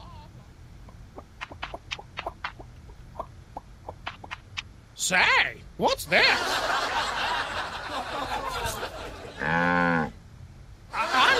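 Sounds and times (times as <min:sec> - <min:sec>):
noisy sound: 0:00.0 - 0:11.3
speech: 0:05.0 - 0:07.2
laughter: 0:06.2 - 0:09.5, 0:10.9 - 0:11.3
cow mooing: 0:09.4 - 0:10.2.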